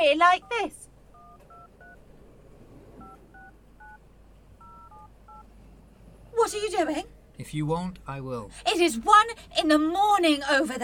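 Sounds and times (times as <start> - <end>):
speech: 0.0 - 0.8, 6.4 - 10.8
low steady hum: 0.0 - 10.8
telephone touch-tone dialing beeps: 0.4 - 2.0, 3.0 - 4.0, 4.6 - 5.5
telephone ringing: 0.4 - 2.1, 3.0 - 4.0, 4.6 - 5.5.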